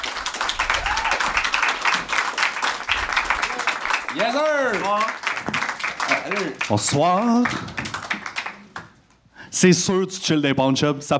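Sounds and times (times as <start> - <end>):
audience applauding to welcome guests: 0.0 - 9.0
audience cheers: 0.3 - 8.6
speech: 4.2 - 5.2, 6.2 - 7.9, 9.6 - 11.1.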